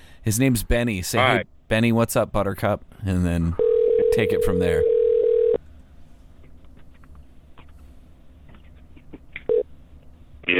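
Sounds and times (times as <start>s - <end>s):
faint room hum: 0.0s - 10.5s
speech: 0.2s - 5.0s
electronic phone ringing tone on speakerphone: 3.6s - 5.6s.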